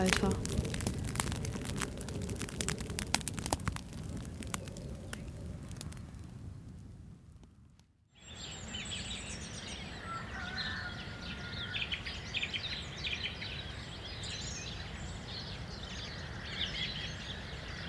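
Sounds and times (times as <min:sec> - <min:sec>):
speech: 0:00.0 - 0:00.5
steady low outdoor rumble: 0:00.0 - 0:07.7
song thrush singing: 0:08.2 - 0:17.8.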